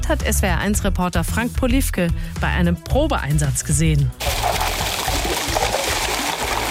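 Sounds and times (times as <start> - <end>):
speech: 0.1 - 4.4
crushed ice pouring into cold water in a mobile ice-water tub: 4.2 - 6.6.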